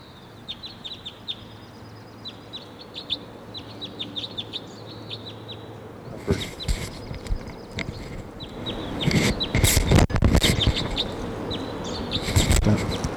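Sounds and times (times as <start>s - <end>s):
wild crossbill calls: 3.0s - 13.1s.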